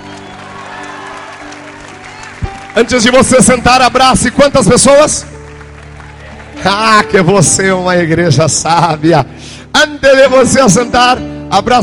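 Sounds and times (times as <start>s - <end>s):
crowd noise: 0.0s - 4.5s, 5.7s - 7.1s
church congregation applauding during a worship service: 0.0s - 8.2s
speech: 2.8s - 5.3s, 6.6s - 11.8s.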